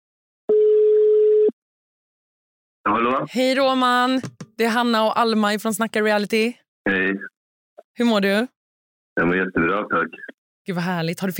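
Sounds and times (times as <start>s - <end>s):
telephone ringback tone as a call rings out: 0.5s - 1.5s
speech: 2.8s - 7.3s, 8.0s - 8.6s, 9.2s - 11.3s.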